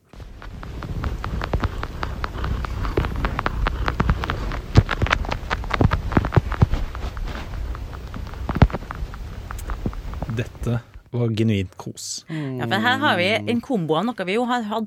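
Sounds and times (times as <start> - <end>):
cat purring: 0.0 - 11.1
speech: 10.7 - 14.8.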